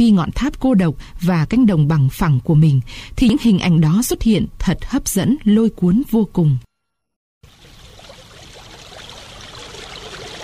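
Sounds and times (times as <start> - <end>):
speech: 0.0 - 6.7
river rushing down a hillside: 7.5 - 10.4.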